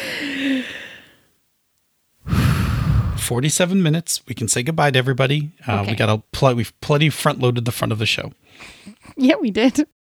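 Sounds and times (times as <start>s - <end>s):
deep breath released as a long breathy sigh: 0.0s - 1.2s, 2.3s - 3.4s
speech: 3.3s - 10.0s.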